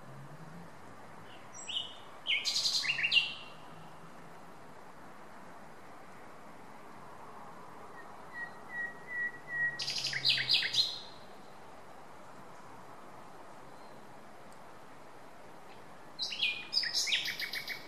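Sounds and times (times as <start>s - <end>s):
common nightingale Luscinia megarhynchos singing: 1.2s - 3.8s, 7.9s - 11.6s, 16.2s - 17.8s.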